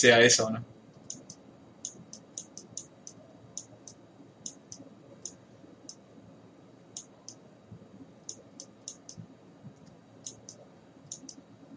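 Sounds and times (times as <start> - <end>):
speech: 0.0 - 0.8
keyboard typing a search word: 1.0 - 6.0, 8.2 - 11.7.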